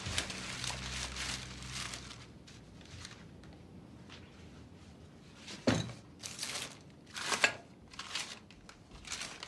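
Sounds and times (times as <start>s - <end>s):
paper and plastic shopping bags rustling and crinkling: 0.0s - 3.3s, 6.1s - 9.4s
objects being set down with soft thunks: 5.6s - 6.0s.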